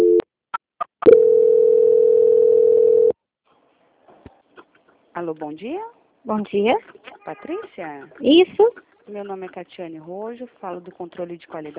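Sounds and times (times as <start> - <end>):
telephone call transfer tones: 1.1 - 3.1
speech: 5.2 - 11.7.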